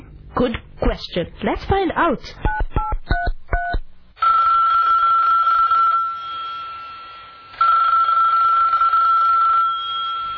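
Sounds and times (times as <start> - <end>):
speech: 0.4 - 2.5
electronic ringback tone of an outgoing phone call: 4.2 - 10.3.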